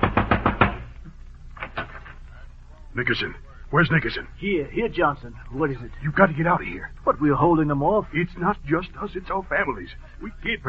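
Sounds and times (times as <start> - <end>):
heavy pounding on a door at night: 0.0 - 0.9
speech: 3.0 - 10.6.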